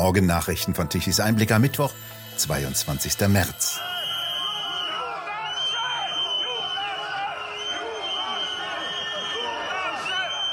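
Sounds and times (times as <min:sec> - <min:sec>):
speech: 0:00.0 - 0:04.0
sharp whistles from a crowd of farmers: 0:03.0 - 0:10.5
angry crowd of farmers shouting and jeering at an agricultural fair: 0:03.8 - 0:10.5.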